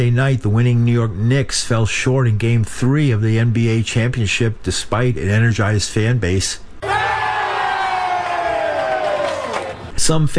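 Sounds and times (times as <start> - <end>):
speech: 0.0 - 6.6, 10.0 - 10.3
huge arena crowd booing at a basketball championship game: 6.8 - 9.9.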